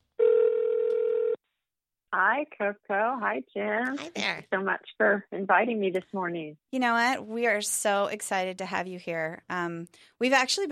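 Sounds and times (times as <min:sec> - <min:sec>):
telephone ringing tone on an outgoing call through a narrow phone line: 0:00.2 - 0:01.4
speech: 0:02.2 - 0:10.7.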